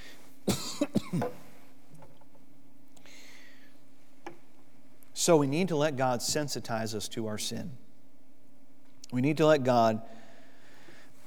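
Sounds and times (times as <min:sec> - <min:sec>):
person coughing from a tickle in the throat: 0:00.5 - 0:01.4
throat clearing from a tickle in the throat: 0:00.5 - 0:01.4
speech: 0:01.0 - 0:01.5, 0:05.2 - 0:07.8, 0:09.1 - 0:10.2.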